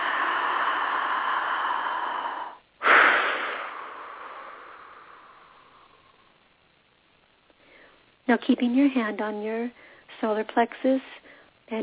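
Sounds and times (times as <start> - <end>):
deep breath in a guided relaxation exercise: 0.0 - 6.5, 7.6 - 8.1, 9.8 - 10.1, 11.2 - 11.6
speech: 8.3 - 11.8.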